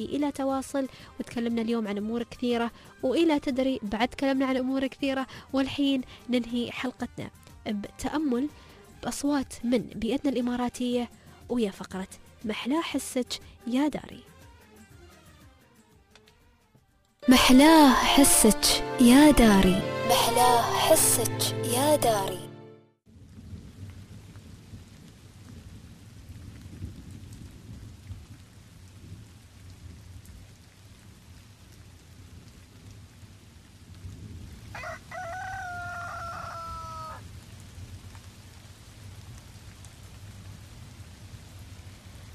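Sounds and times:
speech: 0.0s - 14.3s, 17.2s - 22.5s
steady rain pouring down in a suburb in the UAE: 0.0s - 15.9s, 23.1s - 42.3s
low rumble of thunder: 23.1s - 31.4s, 32.0s - 34.7s
rooster crowing: 34.7s - 37.2s.

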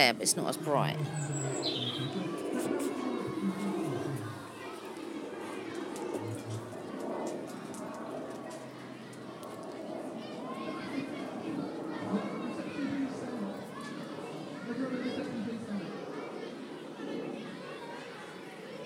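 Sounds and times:
speech: 0.0s - 2.3s
indistinct murmuring voices: 0.0s - 18.8s
loud outdoor noise: 0.0s - 18.8s
songbird singing: 1.1s - 2.2s
laughter: 1.2s - 4.6s.

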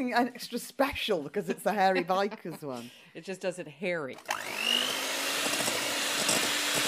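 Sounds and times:
speech: 0.0s - 4.8s
electric hand whisk running at constant speed: 4.2s - 6.8s.

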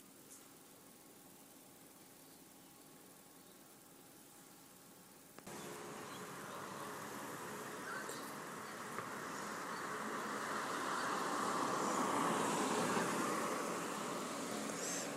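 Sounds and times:
single car passing along a nearby street: 5.5s - 15.1s.

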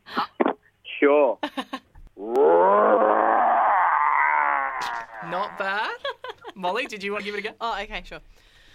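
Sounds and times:
speech: 1.1s - 1.7s, 6.6s - 8.5s
person imitating a tiger roar in an on-air roar-off contest: 2.2s - 5.7s
person breathing: 8.3s - 8.7s.

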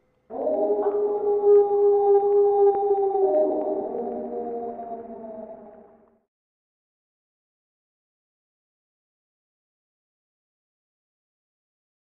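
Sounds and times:
eerie distant wavering howl: 0.3s - 6.1s.

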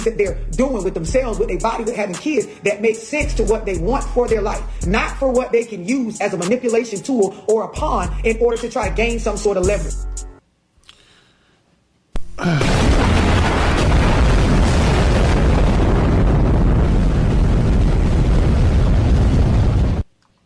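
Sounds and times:
speech: 0.0s - 10.1s, 12.4s - 12.7s
hydrogen bomb explosion sound effect roar: 12.4s - 20.0s.

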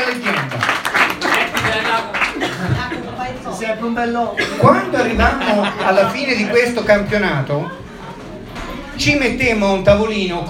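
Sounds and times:
audience applause: 0.0s - 2.8s
laughter: 1.3s - 3.2s, 4.4s - 8.5s
speech: 3.8s - 7.8s, 9.0s - 10.4s.

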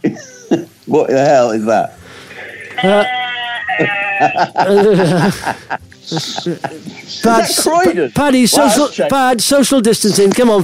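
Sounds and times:
speech: 0.5s - 2.0s, 2.8s - 3.2s, 3.8s - 10.6s
laughter: 2.4s - 9.0s
goat bleating: 2.6s - 4.5s.

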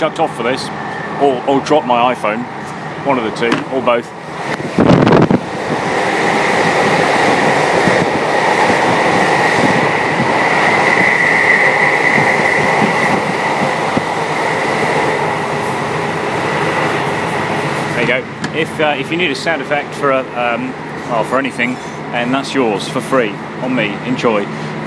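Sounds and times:
speech: 0.0s - 4.6s, 18.6s - 24.7s
steady whine: 0.0s - 24.8s
train rushing through countryside at night heard through an open window: 0.0s - 24.8s.

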